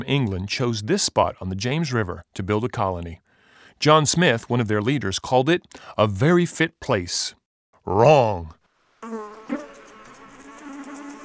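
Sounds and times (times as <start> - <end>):
speech: 0.0 - 3.2, 3.8 - 9.6
mosquitoes buzzing over swampy land: 9.0 - 11.2.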